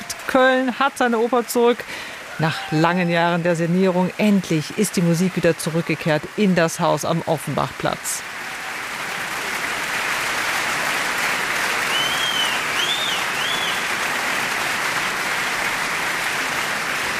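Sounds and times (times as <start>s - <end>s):
large opera audience applauding: 0.0s - 17.1s
speech: 0.3s - 8.3s
high whistles and cheers from an opera audience: 8.3s - 17.1s.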